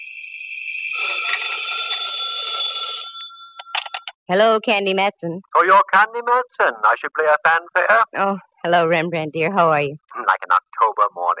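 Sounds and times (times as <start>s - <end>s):
old telephone bell ringing at home: 0.8s - 4.1s
speech: 1.0s - 1.6s, 4.3s - 11.3s.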